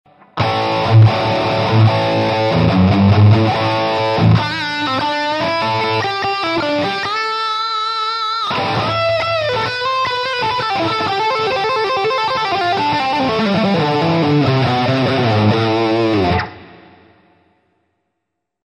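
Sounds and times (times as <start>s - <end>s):
distorted electric guitar through amp modeler: 0.1s - 17.6s.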